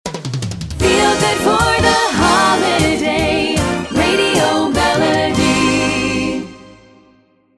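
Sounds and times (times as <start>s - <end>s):
feel-good holiday sung radio jingle: 0.8s - 6.8s.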